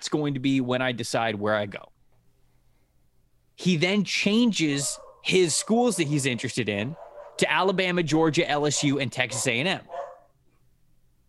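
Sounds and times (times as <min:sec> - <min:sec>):
speech: 0:00.1 - 0:02.0, 0:03.6 - 0:10.1
dog barking at mail delivery: 0:04.8 - 0:06.1, 0:06.9 - 0:07.5, 0:08.7 - 0:10.3.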